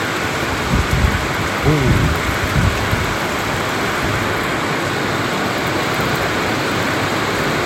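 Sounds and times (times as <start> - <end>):
heavy rain hissing during a night thunderstorm: 0.0 - 7.6
thunder rumbling during a night thunderstorm with lightning: 0.7 - 3.2.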